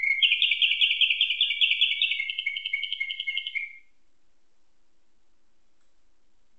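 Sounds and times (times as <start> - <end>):
Atlantic canary trill tutored with nightingale song: 0.0 - 3.9.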